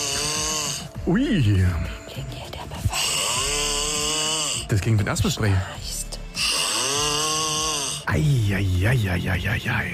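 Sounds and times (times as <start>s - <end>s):
man snoring loudly: 0.0s - 1.1s, 3.0s - 4.8s, 6.2s - 8.3s
speech: 1.1s - 2.4s, 4.7s - 5.9s, 8.1s - 9.9s.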